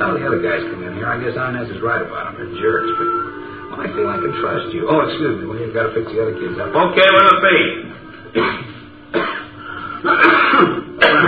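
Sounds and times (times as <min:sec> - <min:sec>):
speech: 0:00.0 - 0:09.3
harsh rasping throat clearing: 0:08.3 - 0:11.2.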